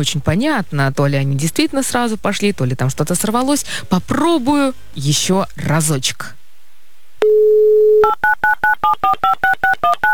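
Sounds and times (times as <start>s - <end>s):
speech: 0.0s - 6.4s, 8.8s - 10.0s
telephone dial tone: 7.2s - 10.1s.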